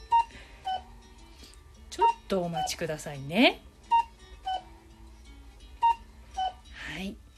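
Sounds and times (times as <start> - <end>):
clock electronic alarm chime beeping in pairs of clear tones: 0.0 - 0.9, 2.0 - 2.8, 3.9 - 4.7, 5.8 - 6.6
speech: 2.3 - 3.7.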